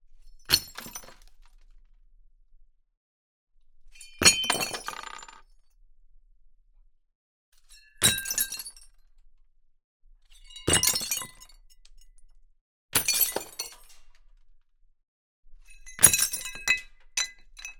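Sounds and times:
glass dropping into small shards: 0:04.2 - 0:05.4, 0:08.1 - 0:08.8, 0:10.7 - 0:11.5, 0:13.0 - 0:13.8, 0:16.0 - 0:17.7.

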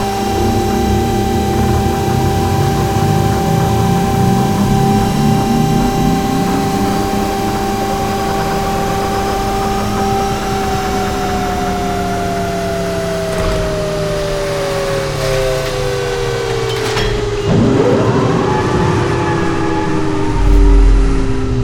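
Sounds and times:
space ship shutting down: 0:00.0 - 0:21.6.

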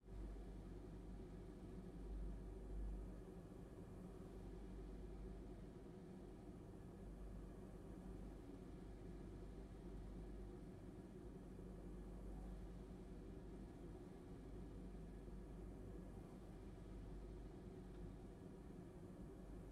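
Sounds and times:
air conditioning hum and hiss: 0:00.0 - 0:19.7.

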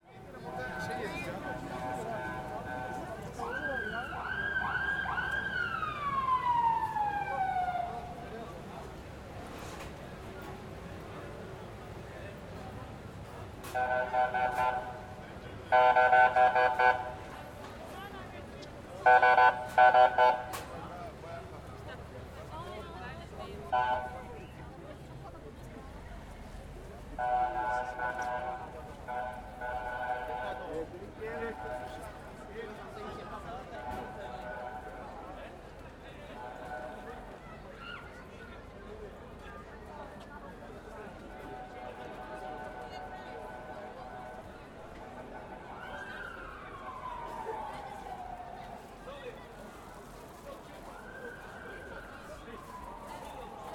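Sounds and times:
Turkish voices: 0:00.0 - 0:53.7
crowd atmosphere: 0:00.0 - 0:53.7
traffic at Taksim Square: 0:00.0 - 0:53.7
tram at Taksim Square: 0:00.1 - 0:03.4, 0:08.1 - 0:45.7
fire truck siren: 0:00.4 - 0:09.9, 0:13.6 - 0:17.6, 0:19.0 - 0:20.9, 0:23.6 - 0:24.3, 0:27.2 - 0:35.6, 0:36.3 - 0:37.4, 0:41.1 - 0:53.7.

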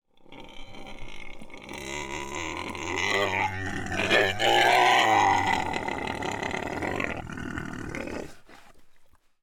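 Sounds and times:
pig squealing: 0:00.7 - 0:07.3.

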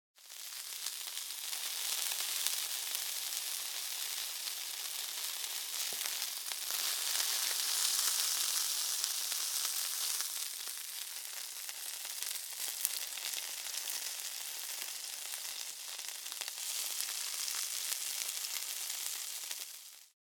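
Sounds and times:
burger sizzling while pressed down: 0:00.2 - 0:20.2.

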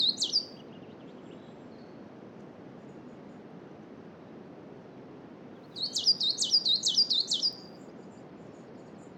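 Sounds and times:
coal tit singing in a coniferous forest in spring: 0:00.0 - 0:00.5, 0:05.8 - 0:07.6
wind in a coniferous forest: 0:00.0 - 0:09.1.

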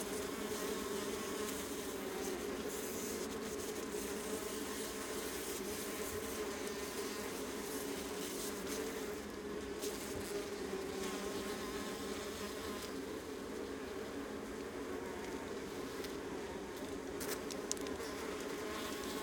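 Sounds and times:
honey bee colony buzzing on the Adriatic coast: 0:00.0 - 0:19.2
sharp taps and faint crackles in a honey bee colony: 0:17.2 - 0:18.0.

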